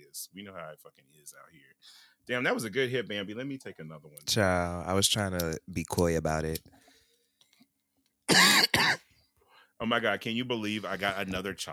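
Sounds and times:
speech: 0.2 - 6.9, 9.8 - 11.7
harsh coughs: 8.3 - 9.1.

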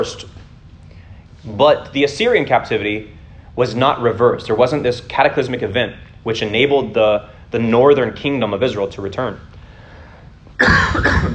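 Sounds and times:
speech: 0.0 - 0.3, 1.4 - 9.5
person coughing into a microphone: 10.6 - 11.3.

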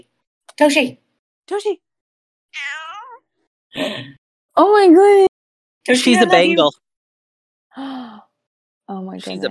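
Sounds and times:
speech: 0.6 - 1.9, 2.5 - 2.8, 3.7 - 6.8, 7.8 - 8.0, 8.9 - 9.4
kitten meowing: 2.6 - 3.2.

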